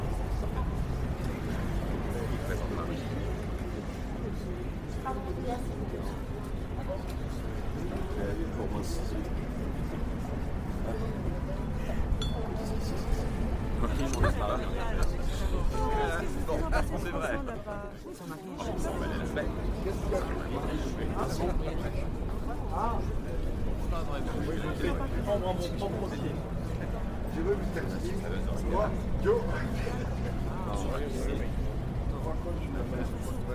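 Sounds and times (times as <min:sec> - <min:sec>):
low rumble of traffic: 0:00.0 - 0:18.0, 0:18.6 - 0:33.5
many people talking at once in a busy café at night: 0:00.0 - 0:33.5
glasses and cups clinking: 0:12.2 - 0:12.6.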